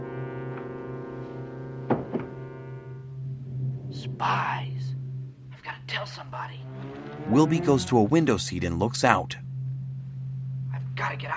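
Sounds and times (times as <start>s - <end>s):
steady sustained low droning tone: 0.0s - 8.6s, 9.4s - 11.3s
bedroom door connected to a study shutting: 1.9s - 2.4s
speech: 4.0s - 4.9s, 6.0s - 9.4s.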